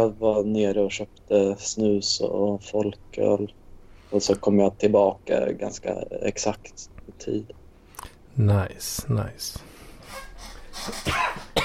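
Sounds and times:
speech: 0:00.0 - 0:07.6, 0:08.4 - 0:09.7, 0:10.8 - 0:11.4
person coughing: 0:10.9 - 0:11.6.

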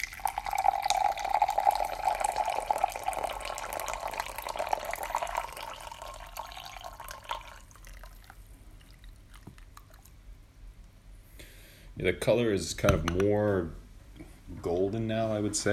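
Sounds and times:
brewed hojicha tea being poured in a steady stream: 0:00.0 - 0:10.2
speech: 0:12.0 - 0:13.8, 0:14.6 - 0:15.7.

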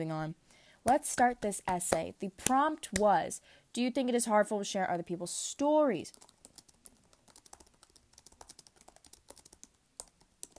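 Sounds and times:
speech: 0:00.0 - 0:06.3
person typing an essay on a computer keyboard: 0:06.1 - 0:10.5.

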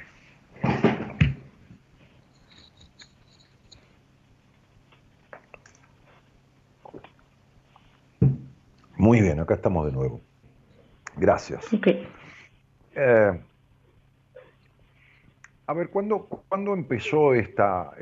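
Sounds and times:
person taking small sips of water: 0:05.3 - 0:06.0, 0:06.8 - 0:07.3
swallowing: 0:06.8 - 0:07.2
speech: 0:09.1 - 0:10.3, 0:11.2 - 0:12.2, 0:13.0 - 0:13.5, 0:15.7 - 0:18.0.

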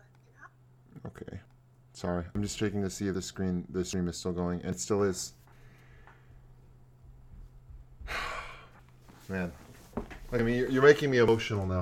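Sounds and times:
faint low hum: 0:00.0 - 0:11.8
speech: 0:02.0 - 0:05.4, 0:10.4 - 0:11.8
person yawning: 0:08.1 - 0:08.7.

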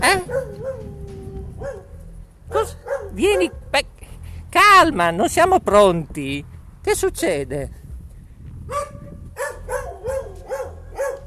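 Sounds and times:
dog yelping: 0:00.0 - 0:01.9, 0:02.5 - 0:03.5, 0:08.7 - 0:11.2
dogs barking: 0:00.0 - 0:03.7, 0:08.7 - 0:11.2
dog whine-like yowl: 0:00.1 - 0:01.9, 0:09.4 - 0:11.2
speech: 0:03.2 - 0:03.9, 0:04.8 - 0:07.8.

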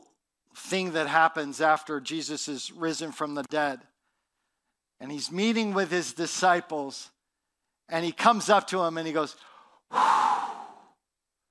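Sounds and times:
speech: 0:00.7 - 0:03.9, 0:05.0 - 0:07.2, 0:07.9 - 0:10.2
voice imitating blowing breath: 0:09.9 - 0:11.0.

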